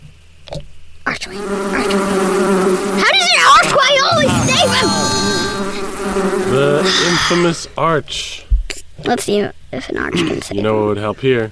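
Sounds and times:
speech: 0:01.3 - 0:01.7, 0:06.5 - 0:11.5
bees buzzing in a video game: 0:01.3 - 0:07.5
brief tonal blip: 0:04.1 - 0:06.0.

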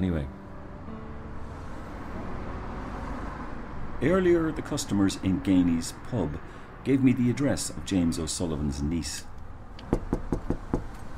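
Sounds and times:
speech: 0:00.0 - 0:00.4, 0:04.0 - 0:09.3
knocking on a front door in the evening: 0:09.9 - 0:10.9.

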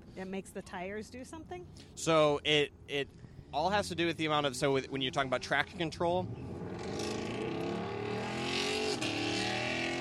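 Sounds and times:
speech: 0:00.2 - 0:06.9
Ford Mustang engine passing at a cars-and-coffee meet: 0:03.6 - 0:10.0.

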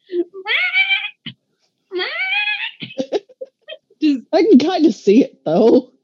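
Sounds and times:
person imitating a cat meowing: 0:00.3 - 0:01.3, 0:01.9 - 0:03.2
laughter: 0:02.8 - 0:03.7
speech: 0:04.4 - 0:05.9.

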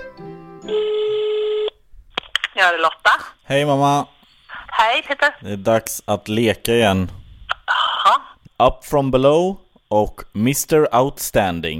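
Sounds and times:
phone ringback tone on an outgoing call: 0:00.6 - 0:01.8
speech: 0:00.7 - 0:01.0, 0:02.6 - 0:04.1, 0:04.8 - 0:07.2, 0:08.1 - 0:11.7.

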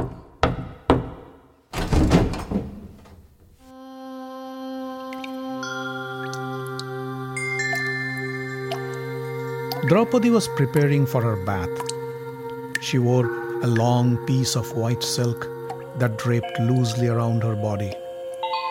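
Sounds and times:
knocking on a wooden door: 0:00.0 - 0:01.3
heavier rattling thump on a wooden door: 0:00.0 - 0:03.5
steady musical drone with bright ringing tones: 0:03.8 - 0:18.6
speech: 0:09.9 - 0:11.9, 0:12.8 - 0:18.0.

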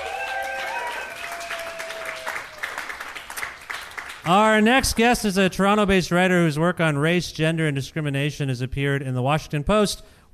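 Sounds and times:
whoops and cheers from the audience: 0:00.0 - 0:02.9
audience applauding with many hands clapping: 0:00.0 - 0:05.0
speech: 0:04.2 - 0:10.3.

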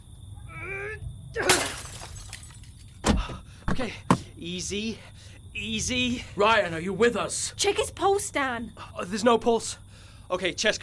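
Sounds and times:
glass being smashed with a log: 0:01.4 - 0:02.9
glass shards scattering and tinkling: 0:01.5 - 0:02.9
speech: 0:03.8 - 0:10.8.

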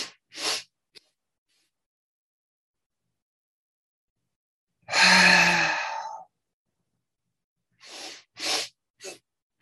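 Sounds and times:
long breathy sigh of an exhale: 0:04.9 - 0:06.2
sniffing inhales: 0:07.8 - 0:09.2.

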